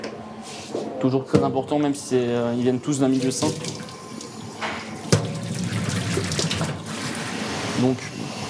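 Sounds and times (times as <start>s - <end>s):
speech: 1.0s - 3.9s, 7.8s - 8.1s
running tap water splashing in a kitchen sink washing root vegetables and herbs: 3.2s - 7.0s.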